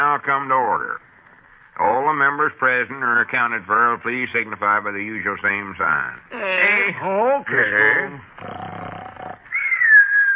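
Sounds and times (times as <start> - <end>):
speech: 0.0 - 1.1, 1.8 - 8.8
elderly man snoring: 8.4 - 9.4.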